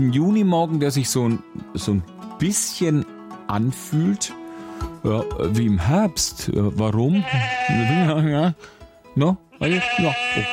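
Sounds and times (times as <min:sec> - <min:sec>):
speech: 0:00.0 - 0:10.5
sheep bleating: 0:07.1 - 0:08.3, 0:09.5 - 0:10.5.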